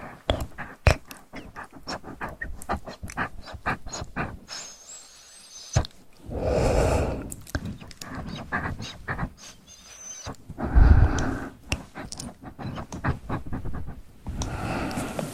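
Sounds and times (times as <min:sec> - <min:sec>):
wet mouth sounds of stones and tongue stirring: 0:00.0 - 0:04.8, 0:05.7 - 0:15.3
breathy swells: 0:06.2 - 0:07.6, 0:10.6 - 0:11.6, 0:14.4 - 0:15.3.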